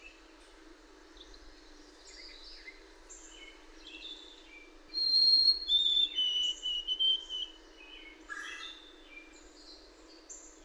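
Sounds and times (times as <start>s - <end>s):
faint background hiss: 0.0s - 10.6s
bird singing whistled notes: 4.9s - 9.2s.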